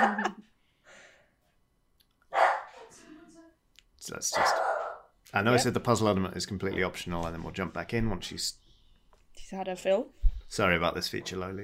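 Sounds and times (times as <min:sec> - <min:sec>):
dog barking: 0:02.3 - 0:02.8, 0:04.3 - 0:05.1
speech: 0:04.0 - 0:04.7, 0:05.3 - 0:08.6, 0:09.5 - 0:11.6.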